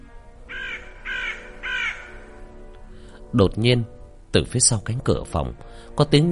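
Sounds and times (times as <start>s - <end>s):
crow cawing mournfully in a dark hospital hallway: 0.5s - 2.6s
speech: 3.3s - 6.3s.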